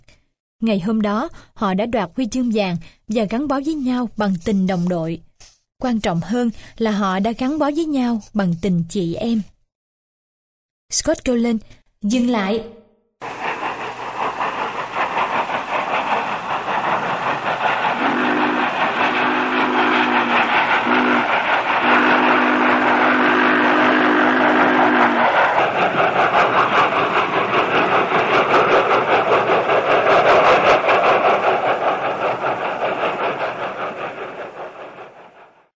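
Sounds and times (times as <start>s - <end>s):
speech: 0.6s - 9.5s, 10.9s - 13.3s
train slowly rolling away: 13.2s - 35.7s.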